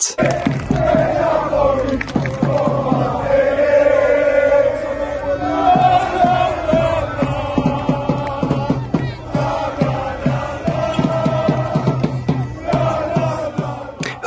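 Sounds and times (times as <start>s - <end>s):
hundreds of football fans chanting and singing at an airport at night: 0.0s - 14.2s
sharp claps from football fans: 0.2s - 3.0s
football fans shouting: 0.2s - 14.2s.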